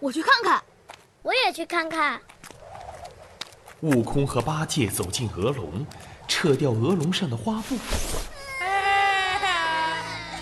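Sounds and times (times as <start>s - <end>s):
speech: 0.0s - 2.3s, 3.8s - 8.3s
small children crying inside covered goose cages: 8.3s - 10.3s.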